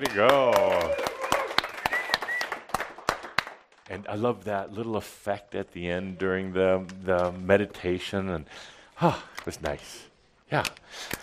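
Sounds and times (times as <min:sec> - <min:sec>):
speech: 0:00.0 - 0:00.6, 0:03.9 - 0:11.2
murmur of cheering voices: 0:00.0 - 0:02.5
small group clapping: 0:00.0 - 0:04.2
whoops: 0:00.3 - 0:02.6.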